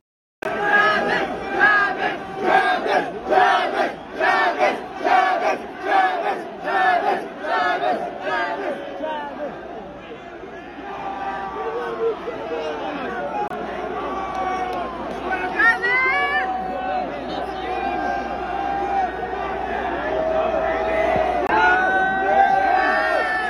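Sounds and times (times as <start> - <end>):
concert crowd chanting for a medic: 0.4 - 23.4.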